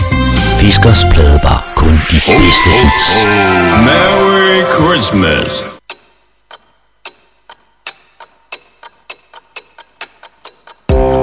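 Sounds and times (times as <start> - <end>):
speech: 0.6 - 5.7
clock ticking: 5.8 - 11.2.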